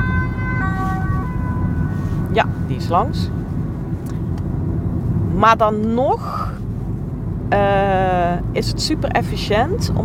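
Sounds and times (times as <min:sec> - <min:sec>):
ambulance siren wailing as the vehicle passes by: 0:00.0 - 0:04.0
loud low traffic rumble: 0:00.0 - 0:10.0
speech: 0:02.4 - 0:03.4, 0:05.4 - 0:06.6, 0:07.5 - 0:10.0.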